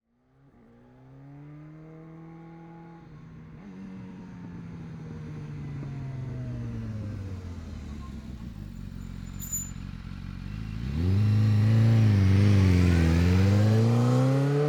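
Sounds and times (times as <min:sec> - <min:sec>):
2015 BMW S1000RR four-stroke 999cc motorcycle approaching, idling and accelerating away: 0:04.9 - 0:14.5.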